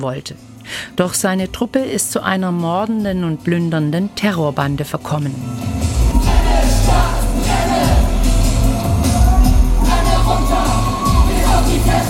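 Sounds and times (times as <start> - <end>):
speech: 0.0 - 6.4
loud driving punk music: 5.3 - 12.0
group of performers shouting a chant in unison on stage: 6.1 - 12.0.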